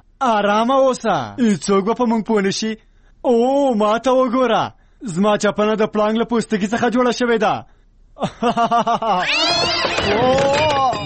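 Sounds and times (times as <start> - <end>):
speech: 0.2 - 10.7
laughter: 8.2 - 11.0
cat meowing and growling: 9.2 - 11.0.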